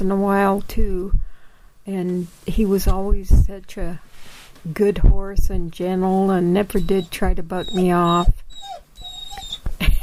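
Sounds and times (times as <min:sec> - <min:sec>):
speech: 0:00.0 - 0:01.2, 0:01.9 - 0:08.8
hungry dog whimpering and whining inside a teepee: 0:06.0 - 0:10.0.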